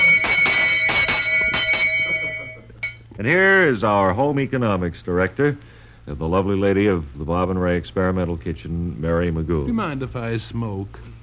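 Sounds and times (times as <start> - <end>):
bell ringing with a rapid rattling clang: 0.0 - 4.2
speech: 3.2 - 11.2.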